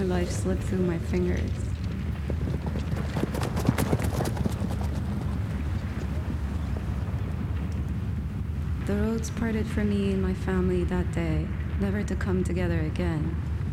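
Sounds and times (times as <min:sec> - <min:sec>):
horse galloping with hooves clip-clopping: 0:00.0 - 0:08.6
wind: 0:00.0 - 0:13.7
speech: 0:00.2 - 0:01.8, 0:08.9 - 0:13.5.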